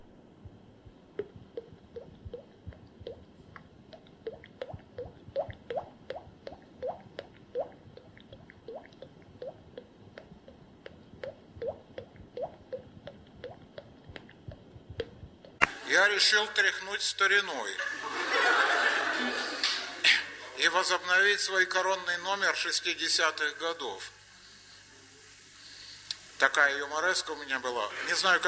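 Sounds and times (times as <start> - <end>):
voice imitating spring meltwater dripping: 0.5 - 15.7
speech: 16.0 - 18.0, 20.7 - 24.2, 26.4 - 28.4
laughter: 17.7 - 20.6.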